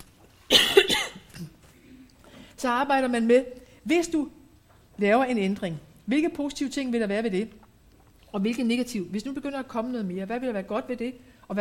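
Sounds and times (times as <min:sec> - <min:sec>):
person coughing harshly: 0:00.5 - 0:02.0
speech: 0:02.6 - 0:04.4, 0:05.0 - 0:07.6, 0:08.3 - 0:11.6.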